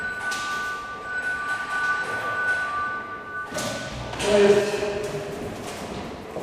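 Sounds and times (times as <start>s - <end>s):
electric bell signal ringing: 0.0s - 4.0s
speech: 4.2s - 5.1s.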